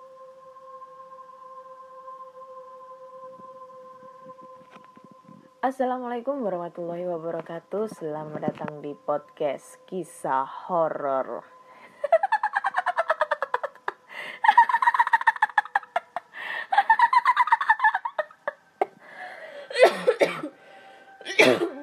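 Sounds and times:
speech: 5.6 - 11.6
laughter: 11.9 - 18.6
person coughing harshly: 19.7 - 20.5, 21.2 - 21.8.

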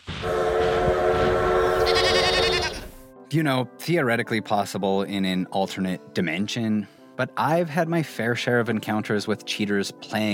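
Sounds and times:
train whistle sound effect: 0.1 - 2.9
goat-like animal bleating sound effect: 1.8 - 3.0
speech: 3.3 - 10.3.

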